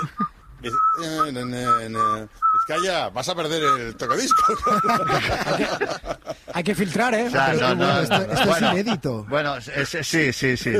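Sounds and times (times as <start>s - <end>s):
laughter: 0.0s - 0.3s, 4.3s - 6.7s, 7.4s - 9.0s
person whistling: 0.0s - 5.4s
speech: 0.6s - 10.7s.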